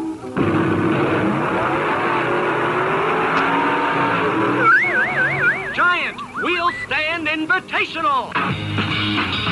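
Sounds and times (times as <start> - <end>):
drag racing cars roaring at a dragway: 0.2 - 7.0
warbling siren-like tone: 4.6 - 7.0
speech: 7.4 - 9.5.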